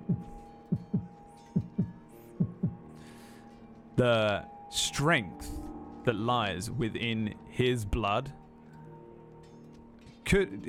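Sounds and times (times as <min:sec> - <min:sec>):
heartbeat thumps: 0:00.0 - 0:02.8
speech: 0:04.0 - 0:08.4, 0:10.3 - 0:10.6.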